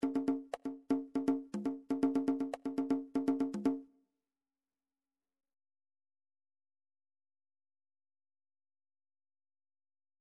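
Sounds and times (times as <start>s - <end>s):
individual MIDI conga drums: 0.0s - 3.8s.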